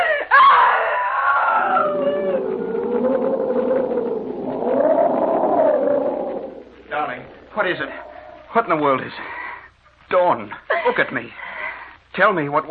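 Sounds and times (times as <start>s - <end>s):
person screaming in terror: 0.0s - 6.6s
speech: 7.7s - 9.4s, 10.1s - 11.4s, 12.2s - 12.6s.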